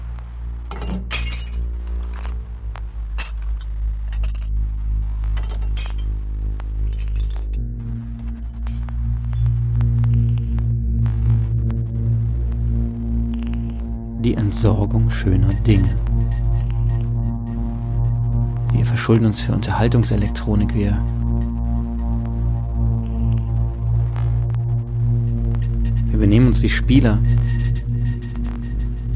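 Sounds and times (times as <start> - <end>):
steady low rumble: 0.0 - 29.1
glass shattering into shards: 0.7 - 1.7, 5.4 - 6.1
speech: 14.3 - 16.1, 18.8 - 21.2, 26.2 - 27.5.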